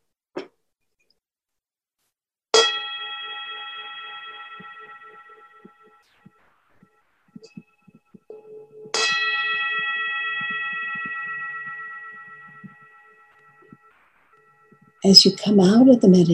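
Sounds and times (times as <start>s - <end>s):
meditation bell ringing: 2.6s - 15.1s
speech: 15.0s - 16.3s.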